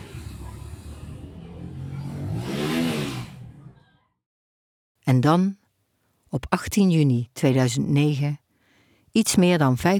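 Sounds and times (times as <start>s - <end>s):
mopeds' small engines revving on a village street: 0.0s - 3.7s
speech: 5.1s - 5.6s, 6.3s - 8.4s, 9.2s - 9.9s.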